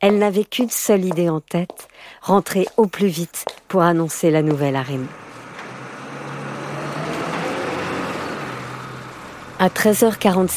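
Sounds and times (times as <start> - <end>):
speech: 0.0 - 5.3, 9.6 - 10.5
broad road noise: 3.4 - 10.5
large vehicle engine rumbling with a low hum: 4.4 - 10.5.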